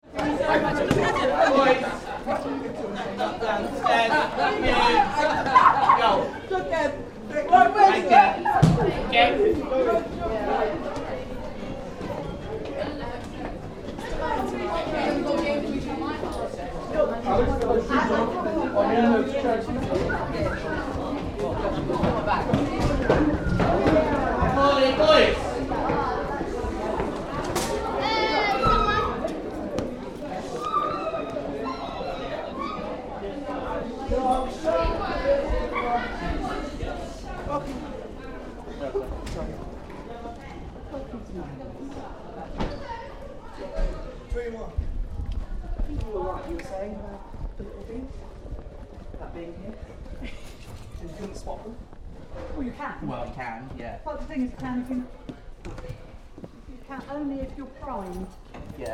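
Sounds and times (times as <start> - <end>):
school children chattering between lessons: 0.0 - 58.9.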